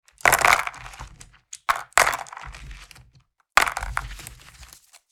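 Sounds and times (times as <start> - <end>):
board game pieces packed into a box: 0.2 - 2.9, 3.6 - 4.4.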